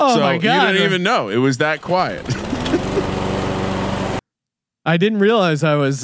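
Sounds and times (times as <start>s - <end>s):
speech: 0.0s - 3.2s, 4.8s - 6.0s
laughter: 0.0s - 3.4s
lawn mower engine running while mowing a lawn: 1.3s - 4.2s.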